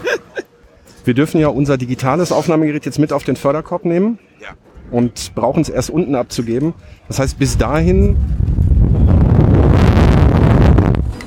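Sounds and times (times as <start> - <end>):
laughter: 0.0 - 0.7
speech: 1.0 - 8.6
gust of wind buffeting the microphone: 6.7 - 11.2.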